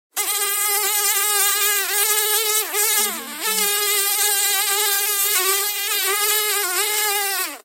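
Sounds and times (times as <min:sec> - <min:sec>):
fly: 0:00.2 - 0:07.6.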